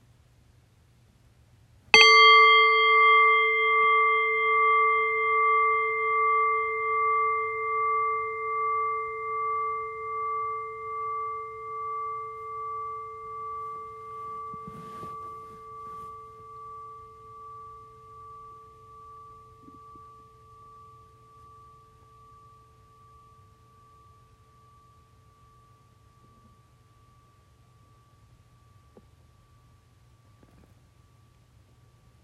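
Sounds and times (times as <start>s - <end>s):
meditation bell ringing with a clear pure tone: 2.0s - 22.5s
faint rustle: 13.4s - 16.8s.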